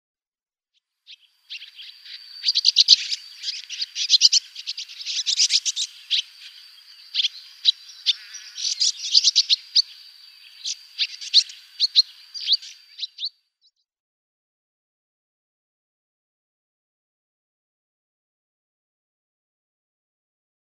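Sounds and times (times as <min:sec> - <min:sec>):
Ethiopian swallow calls: 0:01.1 - 0:13.3.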